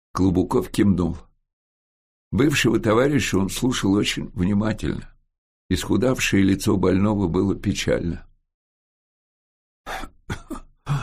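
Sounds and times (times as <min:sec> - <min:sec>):
speech: 0:00.2 - 0:01.3, 0:02.3 - 0:05.1, 0:05.7 - 0:08.3
person clearing their throat: 0:09.9 - 0:11.0.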